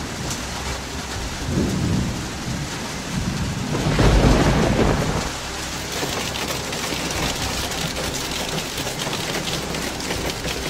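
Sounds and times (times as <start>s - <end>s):
heavy rain pouring: 0.0s - 10.6s
deep thunder rumbling: 1.0s - 8.0s.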